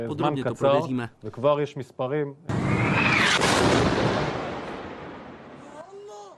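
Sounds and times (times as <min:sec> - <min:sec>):
speech: 0:00.0 - 0:04.4
rocket salvo launching: 0:02.5 - 0:05.6.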